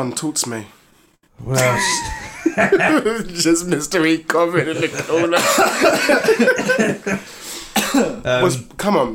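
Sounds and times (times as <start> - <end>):
speech: 0.0 - 0.8, 1.4 - 9.1
laughter: 1.5 - 7.3
person coughing: 5.4 - 8.2.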